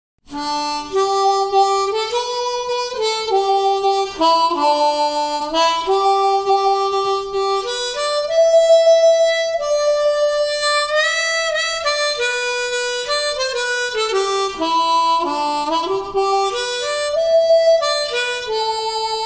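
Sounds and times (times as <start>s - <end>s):
standard harmonica solo melody in solo tuning: 0.3s - 19.2s.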